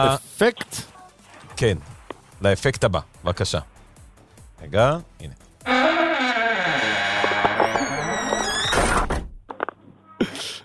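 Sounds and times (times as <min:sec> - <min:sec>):
speech: 0:00.0 - 0:00.9, 0:01.6 - 0:03.7, 0:04.6 - 0:05.9
loud drawn-out creaking door: 0:05.6 - 0:09.5.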